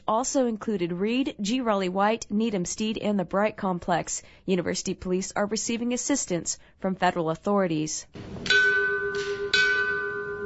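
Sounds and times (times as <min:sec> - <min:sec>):
speech: 0:00.1 - 0:08.6
final alarm bell ringing at a memorial service for firefighters: 0:08.5 - 0:10.4.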